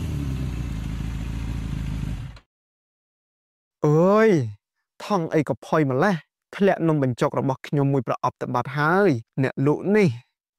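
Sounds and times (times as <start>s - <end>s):
motorcycle engine droning: 0.0s - 2.4s
speech: 3.8s - 10.5s.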